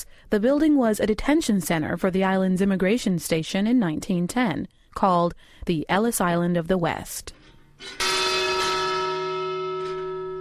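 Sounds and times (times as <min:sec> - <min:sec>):
speech: 0:00.3 - 0:08.1
large immigration station bell struck: 0:08.0 - 0:10.3.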